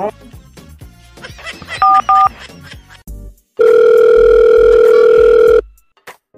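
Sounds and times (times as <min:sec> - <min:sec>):
laughter: 0:01.2 - 0:03.0
telephone dial tone: 0:01.8 - 0:02.3, 0:03.6 - 0:05.7
telephone keypad tones: 0:01.8 - 0:02.3, 0:03.6 - 0:05.6.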